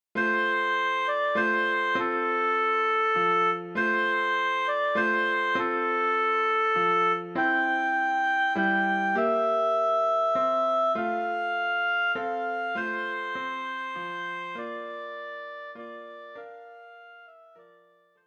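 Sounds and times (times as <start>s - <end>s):
oboe melody: 0.2s - 17.7s.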